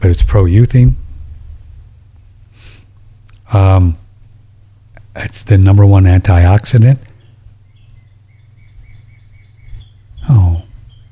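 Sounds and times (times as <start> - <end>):
speech: 0.0 - 1.0, 3.5 - 4.0, 5.2 - 7.1, 10.3 - 10.7
low hum: 0.0 - 11.0
birds chirping: 2.4 - 11.0.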